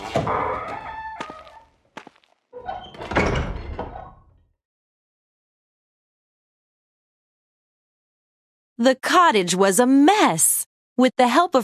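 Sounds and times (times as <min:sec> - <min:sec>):
wooden door creaking open: 0:00.0 - 0:01.7, 0:02.5 - 0:04.5
creaky rasping sound: 0:00.0 - 0:01.8
speech: 0:08.8 - 0:11.6.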